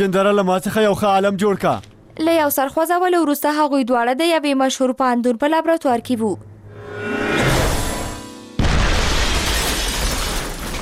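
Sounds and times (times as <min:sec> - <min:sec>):
speech: 0:00.0 - 0:07.1
explosion in a chemistry laboratory: 0:07.4 - 0:10.7.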